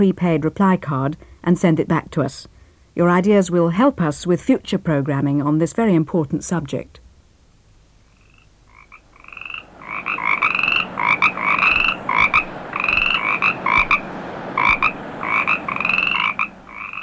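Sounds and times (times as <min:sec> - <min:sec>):
speech: 0:00.0 - 0:07.0
Australian gastric brooding frog croaking: 0:08.1 - 0:17.0.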